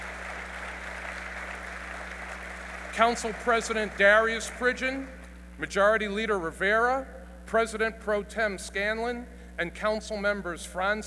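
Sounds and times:
audience applause at a city council event in Buffalo: 0:00.0 - 0:04.8
low electrical hum: 0:00.0 - 0:11.0
speech: 0:03.0 - 0:11.0.

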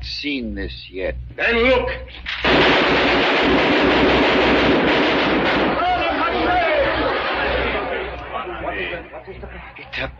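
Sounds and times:
speech: 0:00.2 - 0:04.2, 0:08.8 - 0:10.1
gunfire from a gun in rapid shots: 0:02.3 - 0:07.8
people shouting: 0:05.6 - 0:08.2
laughter: 0:05.9 - 0:10.0.

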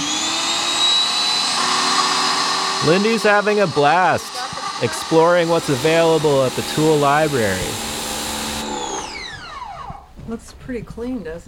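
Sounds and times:
power washer hissing with high motor whine: 0:00.0 - 0:09.5
speech: 0:02.8 - 0:07.9, 0:10.3 - 0:11.4.

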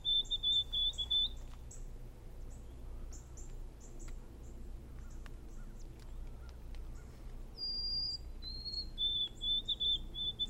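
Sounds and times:
white-throated sparrow singing clear whistled song: 0:00.0 - 0:01.8, 0:07.6 - 0:10.4
low outdoor rumble: 0:00.0 - 0:10.4
other birds chirping faintly: 0:00.0 - 0:10.4.

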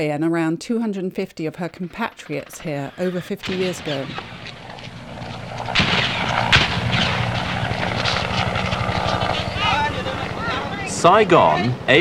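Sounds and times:
speech: 0:00.0 - 0:04.5, 0:11.0 - 0:12.0
helicopter rotors thudding while lifting off: 0:01.4 - 0:12.0
sharp bangs: 0:01.7 - 0:11.0
helicopter engine roaring: 0:03.4 - 0:12.0.

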